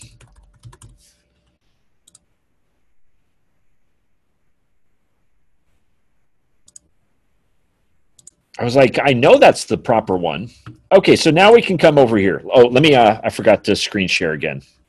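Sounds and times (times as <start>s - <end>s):
computer keyboard typing: 0.0s - 1.2s, 2.0s - 2.2s, 6.6s - 6.9s, 8.2s - 8.4s, 10.6s - 10.9s
speech: 8.6s - 14.8s.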